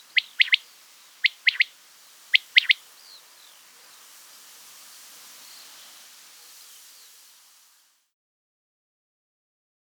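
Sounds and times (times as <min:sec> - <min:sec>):
quail calling: 0:00.0 - 0:04.2.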